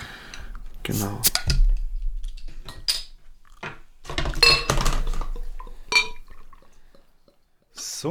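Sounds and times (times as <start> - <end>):
speech: 0.9 - 1.4
beer bottle being handled and opened: 0.9 - 1.6
beer pouring and fizzing into a glass: 2.9 - 8.0
glass clinking: 4.3 - 7.8.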